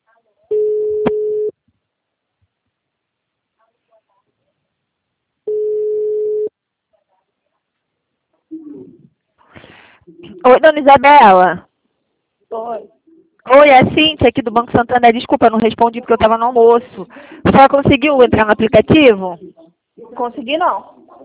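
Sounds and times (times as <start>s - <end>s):
telephone ringing on a call: 0.5s - 1.5s, 5.5s - 6.5s
speech: 10.4s - 11.7s, 13.5s - 21.0s.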